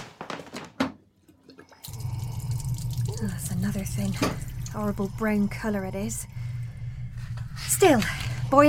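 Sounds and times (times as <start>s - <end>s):
hollow knocks and clunks: 0.2s - 1.1s
water gushing steadily from a tap: 1.8s - 5.2s
speech: 3.2s - 6.3s, 7.8s - 8.6s.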